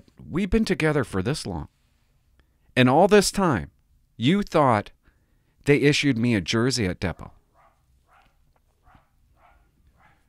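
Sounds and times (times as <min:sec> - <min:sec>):
speech: 0:00.3 - 0:01.8, 0:02.8 - 0:05.0, 0:05.6 - 0:07.4
dog barking: 0:07.2 - 0:10.2.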